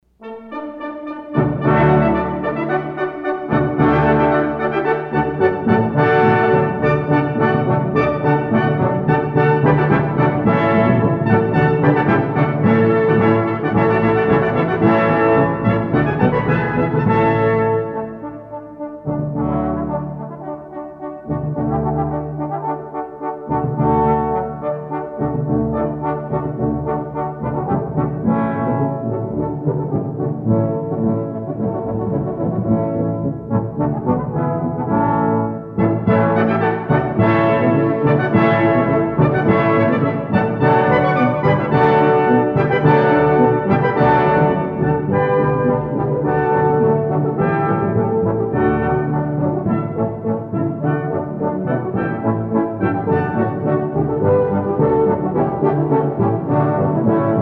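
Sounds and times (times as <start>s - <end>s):
brass ensemble playing: 0.1s - 57.4s.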